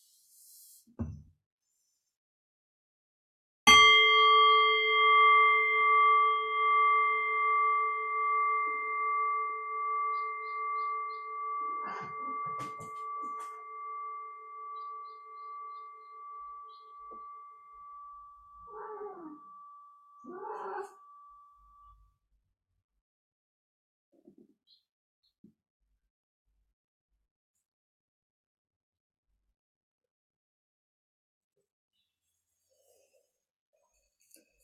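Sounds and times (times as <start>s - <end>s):
meditation bell ringing: 3.7s - 21.9s.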